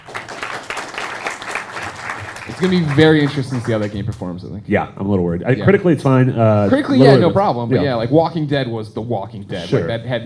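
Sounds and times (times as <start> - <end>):
small group applauding: 0.0 - 4.3
speech: 2.6 - 10.2.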